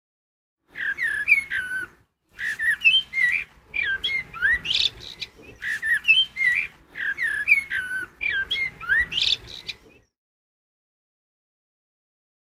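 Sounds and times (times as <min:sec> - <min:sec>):
Eurasian blackbird singing mellow fluty phrases with high squeaky notes: 0:00.7 - 0:10.2.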